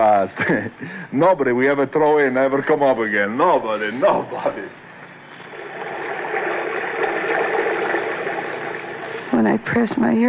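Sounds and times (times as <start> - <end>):
speech: 0.0 - 4.9, 9.4 - 10.2
rushing water: 5.4 - 9.3.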